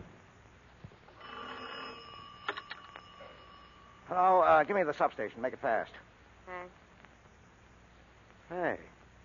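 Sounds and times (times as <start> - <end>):
metallic telephone bell ringing: 1.2 - 4.2
speech: 4.7 - 6.8, 8.5 - 9.0.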